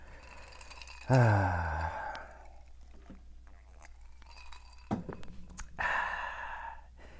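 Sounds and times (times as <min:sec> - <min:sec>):
glass clink: 0:00.0 - 0:05.6
person sipping cognac from a glass: 0:00.0 - 0:05.8
speech: 0:01.1 - 0:01.7.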